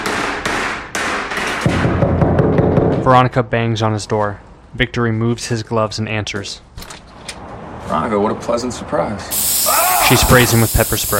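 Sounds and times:
hammer striking a piece of art in a workshop: 0.0s - 3.1s
speech: 3.1s - 6.7s, 7.9s - 11.1s.

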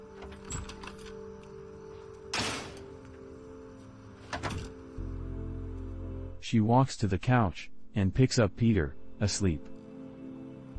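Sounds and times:
door opening: 0.0s - 3.2s, 4.2s - 5.0s
speech: 6.5s - 9.7s.

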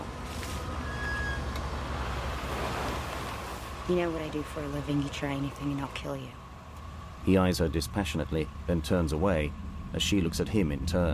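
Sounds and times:
car slowly approaching up a street beside an apartment building at night: 0.0s - 11.1s
continuous broadband traffic noise: 0.0s - 11.1s
speech: 3.9s - 6.4s, 7.2s - 11.1s.

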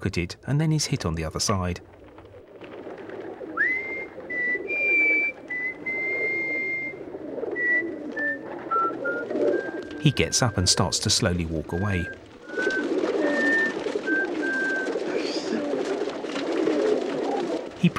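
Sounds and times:
speech: 0.0s - 2.0s, 10.0s - 12.7s
pigeon wings flapping: 0.6s - 17.9s
flock of pigeons cooing: 1.1s - 17.9s
thin whistling tones: 3.2s - 15.8s.

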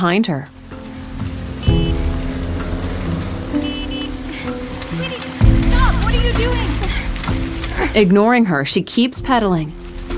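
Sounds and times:
speech: 0.0s - 0.6s, 6.4s - 6.8s, 7.9s - 9.8s
heavy rain pouring down: 0.0s - 8.6s, 9.3s - 10.1s
low rumbling hum: 0.8s - 7.5s
brief high-pitched tones: 1.5s - 5.0s.

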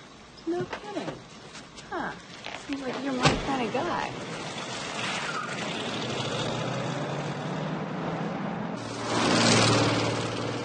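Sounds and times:
speech: 0.4s - 1.1s, 1.9s - 4.3s
car driving off: 4.1s - 10.6s.

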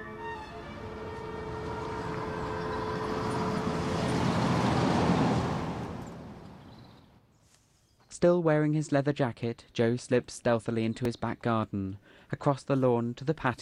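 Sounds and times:
steady tonal drone: 0.0s - 6.5s
car speeding across a bridge and driving past: 0.0s - 7.1s
speech: 8.2s - 13.6s.

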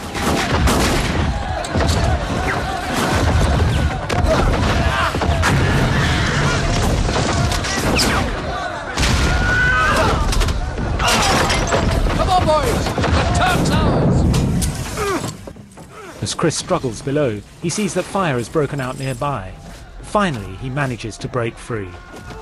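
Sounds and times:
people shouting: 0.0s - 14.2s, 19.5s - 22.3s
gunshots exchanged between boat crews: 0.0s - 15.0s
booms and crashes: 0.0s - 15.4s
speech: 16.4s - 22.2s.

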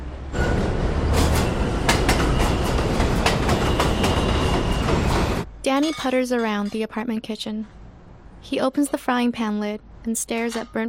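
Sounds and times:
train pulling into a station platform: 0.0s - 5.6s
train wheels clacking over rail joints: 1.1s - 6.9s
speech: 5.7s - 7.8s, 8.4s - 10.8s.

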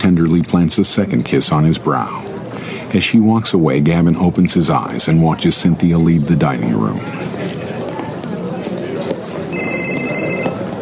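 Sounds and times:
steady noise: 0.0s - 10.8s
speech: 0.2s - 2.3s, 2.9s - 7.4s
cell phone ringing: 9.5s - 10.8s.

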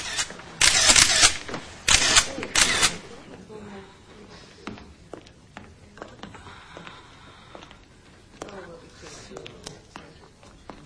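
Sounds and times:
police photographer's camera flash and shutter firing: 0.0s - 3.1s.

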